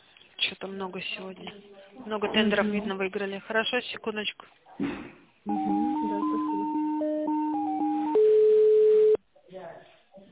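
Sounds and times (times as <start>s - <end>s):
speech: 0.5s - 6.3s
electronic telephone call signal on an office line: 5.5s - 9.2s.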